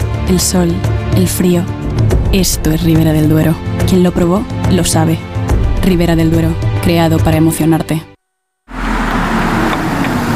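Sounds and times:
speech: 0.3 - 8.1
car engine running: 8.7 - 10.3.

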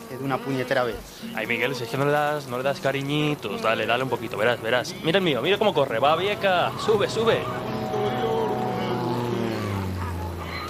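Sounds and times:
speech: 0.1 - 7.7
small propeller plane droning overhead: 4.8 - 10.6.

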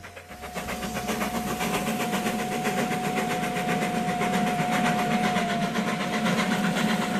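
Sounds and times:
steam train chugging on rails: 0.0 - 7.1
sustained whistle-like tone: 0.4 - 5.9.

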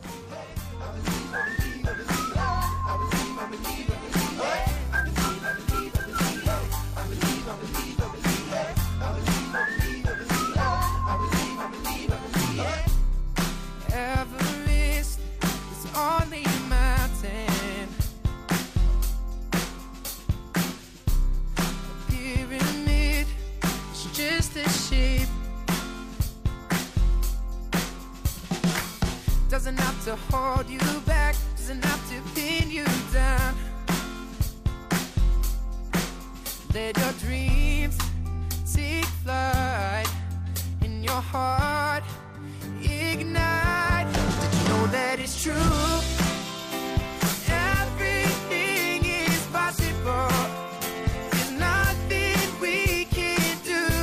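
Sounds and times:
pop song full-band beat with bass and drums: 0.0 - 54.0
bright whistled melody in a pop song intro: 1.0 - 12.8.

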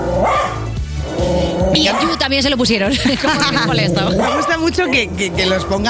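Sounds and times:
dog barking: 0.2 - 0.7, 1.7 - 2.3, 3.4 - 4.7
speech: 1.7 - 5.8
laughter: 2.8 - 5.3.

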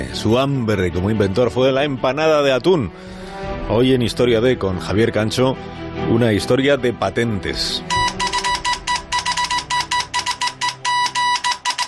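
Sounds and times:
speech: 0.2 - 8.0
telegraph tapping out Morse code: 7.9 - 11.8.

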